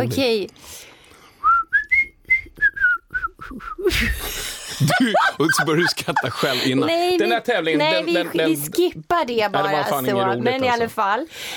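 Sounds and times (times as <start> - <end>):
speech: 0.0 - 0.9, 3.5 - 11.5
person whistling a short halting tune: 1.4 - 4.1
burst of laughter or noisy breath: 4.6 - 7.1.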